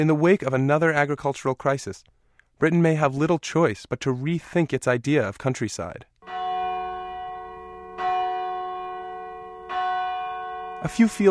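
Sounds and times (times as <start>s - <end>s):
speech: 0.0s - 6.4s, 10.8s - 11.2s
church bells ringing for Sunday service: 6.2s - 11.2s.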